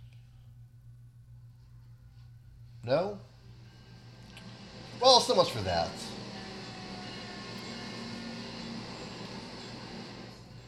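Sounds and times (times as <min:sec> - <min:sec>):
speech: 0:02.8 - 0:03.3, 0:05.0 - 0:06.1
train passing on nearby track: 0:03.6 - 0:10.6.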